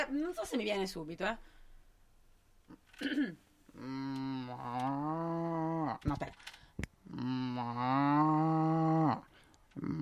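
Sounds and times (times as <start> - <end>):
speech: 0.0 - 1.6, 2.7 - 10.0
person imitating a cow mooing: 3.8 - 6.0, 7.0 - 10.0.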